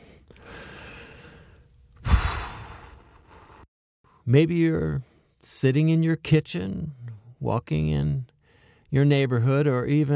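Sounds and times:
breathy sigh: 0.0 - 3.7
deep breath: 0.0 - 3.7, 8.4 - 8.9
speech: 4.3 - 8.3, 8.9 - 10.1.

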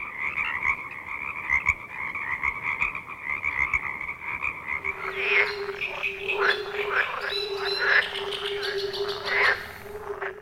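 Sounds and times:
chorus of frogs croaking and trilling: 0.0 - 10.4
steady droning frog call: 4.8 - 10.4.

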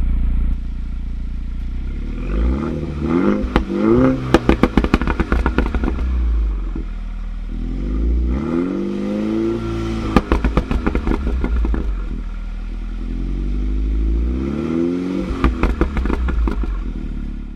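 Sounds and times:
sports car engine idle rumble: 0.0 - 14.3, 15.3 - 17.5
sports car exhaust revving with valve flap open: 0.0 - 17.5
sports car exhaust crackles and pops: 2.5 - 7.1, 9.8 - 12.8, 15.2 - 17.5.

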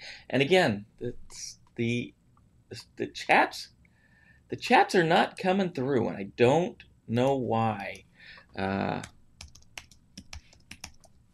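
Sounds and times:
speech: 0.3 - 3.8, 4.5 - 9.2
typing on a computer keyboard: 8.9 - 11.2.

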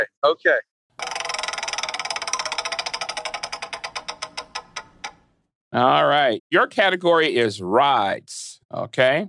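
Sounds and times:
speech: 0.0 - 1.1, 5.7 - 9.2
game show prize wheel spinning with ratcheting clicks: 1.0 - 5.4.

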